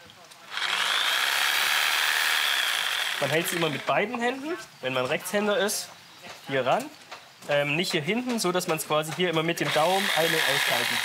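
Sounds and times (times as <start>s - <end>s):
pendulum-action jigsaw cutting wood: 0.5s - 4.0s, 9.6s - 11.0s
speech: 3.2s - 11.0s.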